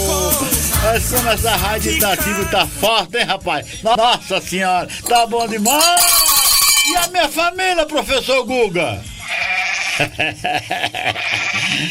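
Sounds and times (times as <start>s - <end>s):
speech: 0.9s - 6.3s, 6.9s - 9.1s, 10.0s - 11.2s
sheep or young goat bleating in quavering calls: 9.1s - 10.2s, 11.1s - 11.8s
laughter: 10.0s - 11.9s.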